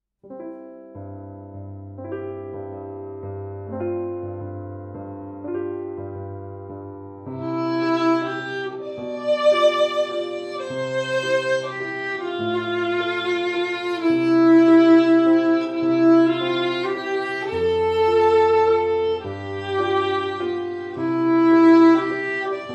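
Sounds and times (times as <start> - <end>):
beginner violin accompaniment at 105 BPM: 7.2 - 22.7.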